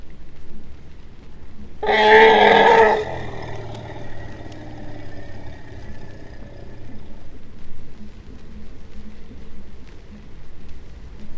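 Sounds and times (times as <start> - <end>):
faint low rumble: 0.0 - 11.3
speech: 1.8 - 2.4
Asian elephant trumpeting: 1.8 - 7.2.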